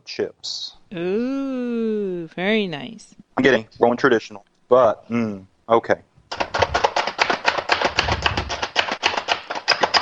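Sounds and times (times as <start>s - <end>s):
speech: 0.1s - 6.1s
hand-operated dome food chopper chopping pecans: 6.3s - 10.0s.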